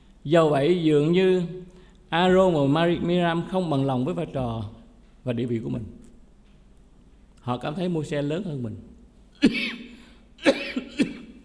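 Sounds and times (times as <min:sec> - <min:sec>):
speech: 0:00.2 - 0:06.0, 0:07.4 - 0:09.7
raspy coughs of a person suffering from a cold: 0:09.4 - 0:11.4.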